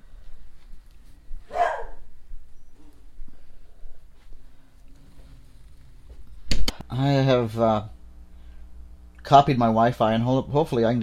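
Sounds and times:
low room hum: 0.0s - 11.0s
dog barking: 1.5s - 2.1s
speech: 7.0s - 7.9s, 9.3s - 11.0s.

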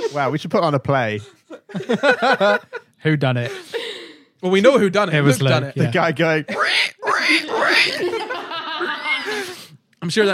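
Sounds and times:
speech: 0.1s - 3.8s, 4.4s - 8.2s, 10.0s - 10.3s
laughter: 1.2s - 4.0s, 6.8s - 9.7s
person imitating a pig squealing: 6.5s - 8.2s.

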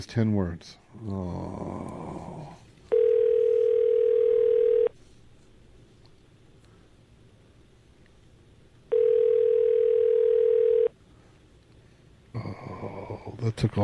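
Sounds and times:
speech: 0.0s - 2.6s, 13.4s - 13.8s
telephone ringing tone heard through a handset: 2.9s - 4.9s, 8.9s - 10.9s.

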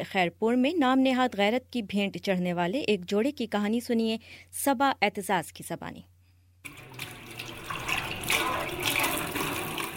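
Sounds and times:
speech: 0.0s - 7.1s
running water splashing at a kitchen sink: 6.7s - 9.9s.

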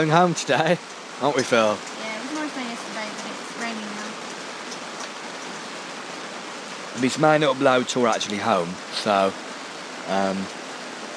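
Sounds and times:
faint voice murmuring: 0.0s - 1.8s, 7.0s - 9.3s, 10.1s - 10.5s
speech: 0.0s - 1.9s, 7.0s - 9.4s, 10.1s - 10.6s
steady rain pattering on a tent: 0.0s - 11.1s.

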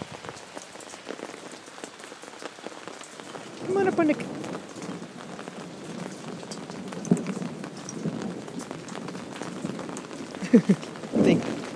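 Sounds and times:
steady rain: 0.0s - 11.7s
thunder rumbling: 3.2s - 11.7s
speech: 3.7s - 4.4s, 10.5s - 11.6s.

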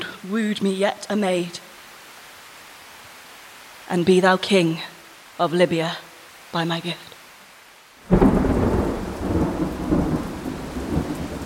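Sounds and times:
rain: 0.0s - 11.4s
speech: 0.3s - 1.7s, 3.9s - 7.1s
thunder: 8.1s - 11.4s.

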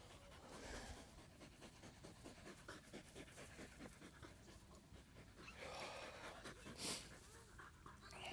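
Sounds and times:
dog panting outdoors on wet grass: 0.0s - 8.3s.

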